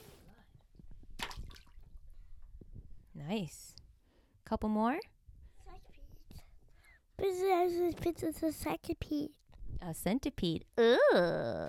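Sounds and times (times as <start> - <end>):
object splashing into water: 1.2 - 1.8
speech: 3.2 - 3.8, 4.5 - 5.1, 7.2 - 11.6.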